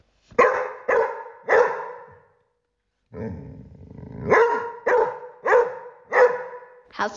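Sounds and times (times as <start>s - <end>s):
dog barking: 0.4s - 2.4s, 4.2s - 6.9s
dog growling: 3.1s - 4.8s
speech: 3.2s - 3.6s, 7.0s - 7.1s.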